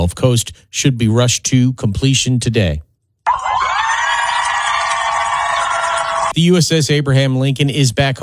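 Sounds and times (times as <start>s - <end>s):
speech: 0.0s - 2.9s, 6.4s - 8.2s
crowd of family members cheering and screaming at port: 3.3s - 6.3s.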